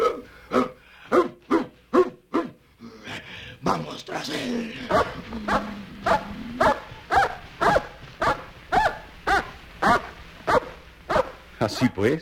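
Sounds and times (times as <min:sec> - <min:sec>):
dog barking: 0:00.0 - 0:02.6, 0:04.9 - 0:11.4
speech: 0:12.0 - 0:12.2.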